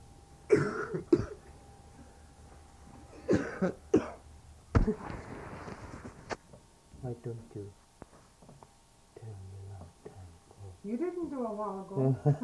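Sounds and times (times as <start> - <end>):
person coughing: 0.5 - 1.5, 3.1 - 4.2
speech: 3.6 - 3.8, 10.9 - 12.4.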